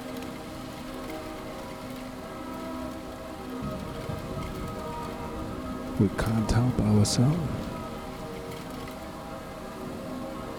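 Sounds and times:
steady rain pouring on a surface: 0.0s - 10.5s
low gusting wind rumble: 3.6s - 9.5s
speech: 6.0s - 7.6s.

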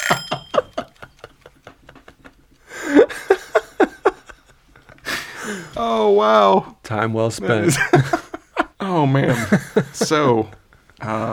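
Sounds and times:
egg timer ticking: 0.0s - 2.6s
burst of laughter: 0.0s - 5.8s, 7.5s - 11.3s
speech: 0.1s - 0.4s, 5.8s - 8.3s, 9.0s - 11.3s.

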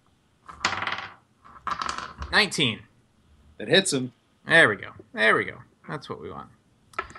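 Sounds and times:
dice rolling across a hard tabletop: 0.4s - 2.4s, 7.0s - 7.1s
speech: 2.3s - 2.9s, 3.6s - 6.6s.

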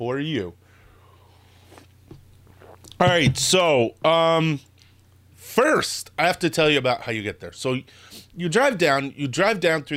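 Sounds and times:
speech: 0.0s - 0.6s, 3.0s - 4.7s, 5.4s - 9.9s
steady low electrical hum: 0.0s - 9.9s
sipping hot coffee from a cup: 1.6s - 3.2s.

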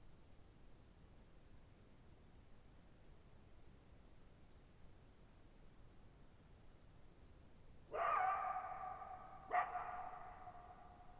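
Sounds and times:
lone coyote howling in a meadow at night: 7.9s - 10.6s.

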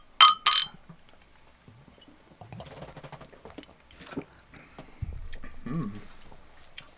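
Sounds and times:
glasses of oatmeal stout beer clinking in a toast: 0.2s - 0.8s.

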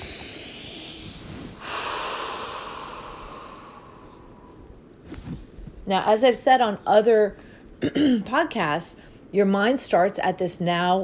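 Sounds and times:
deep breath: 0.0s - 4.8s
speech: 5.9s - 11.0s.

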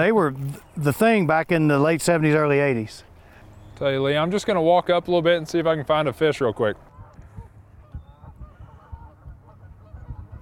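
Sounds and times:
speech: 0.0s - 3.1s, 3.8s - 6.9s
faint outdoor background: 0.0s - 10.3s
flock of geese honking: 6.8s - 10.3s.

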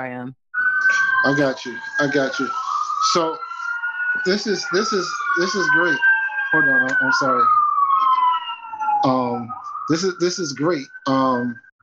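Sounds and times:
speech: 0.0s - 0.4s, 1.2s - 3.5s, 4.2s - 7.6s, 9.0s - 11.7s
emergency vehicle siren passing: 0.6s - 11.7s
laughter: 0.8s - 3.6s, 4.3s - 6.0s, 9.1s - 11.5s.

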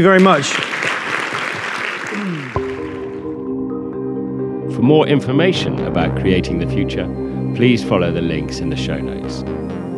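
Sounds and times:
speech: 0.0s - 0.9s, 2.2s - 2.7s, 4.8s - 9.8s
audience applause: 0.0s - 3.2s
sustained musical tone: 2.6s - 9.9s.

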